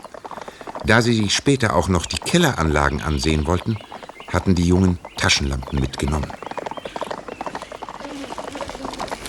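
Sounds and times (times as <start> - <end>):
horse hooves clip-clopping as two riders go through vineyards: 0.0 - 9.2
speech: 0.8 - 6.4
faint murmur of noise: 7.6 - 9.2.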